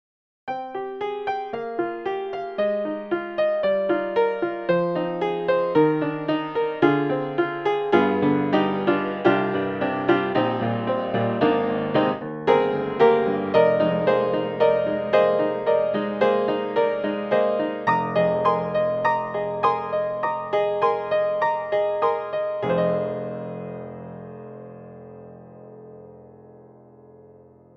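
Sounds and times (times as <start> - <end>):
upright piano: 0.5 - 27.7.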